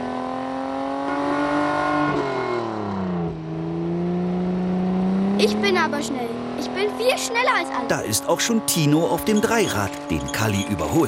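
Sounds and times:
race car engine speeding down a street: 0:00.0 - 0:11.0
speech: 0:05.4 - 0:11.0.

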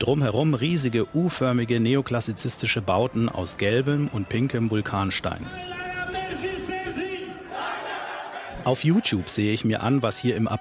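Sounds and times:
speech: 0:00.0 - 0:05.8, 0:08.6 - 0:10.5
huge crowd cheering and chanting outdoors on city square: 0:05.6 - 0:10.5.

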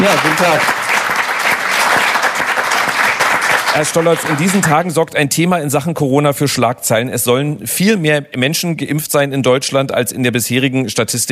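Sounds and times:
speech: 0:00.0 - 0:00.8, 0:03.7 - 0:11.3
large crowd applauding: 0:00.0 - 0:05.0.

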